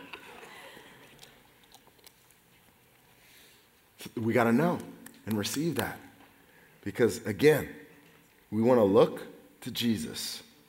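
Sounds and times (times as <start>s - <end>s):
person sipping water: 0.1s - 3.8s
speech: 4.0s - 6.1s, 6.8s - 7.8s, 8.5s - 10.5s.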